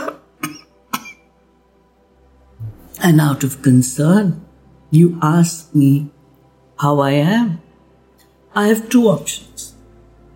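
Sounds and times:
person coughing: 0.0s - 1.2s
speech: 3.0s - 6.2s, 6.8s - 7.6s, 8.6s - 9.7s.

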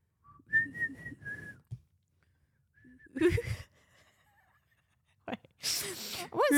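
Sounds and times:
person whistling a pop melody: 0.3s - 1.7s.

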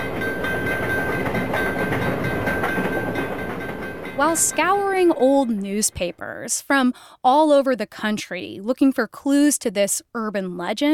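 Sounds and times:
faint clickety-clack of train wheels: 0.0s - 5.2s
train rolling on rails in staged crash test: 0.0s - 6.2s
speech: 4.2s - 10.9s.

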